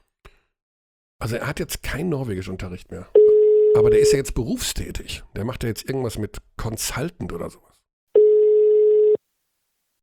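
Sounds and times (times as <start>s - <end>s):
speech: 1.2s - 7.7s
telephone ringing tone while a call is placed: 3.2s - 4.1s, 8.2s - 9.2s.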